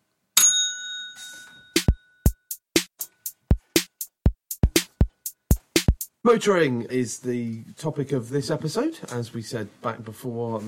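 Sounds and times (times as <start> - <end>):
bell ding: 0.4 - 2.5
punchy percussive hits: 1.8 - 6.2
speech: 6.2 - 10.6.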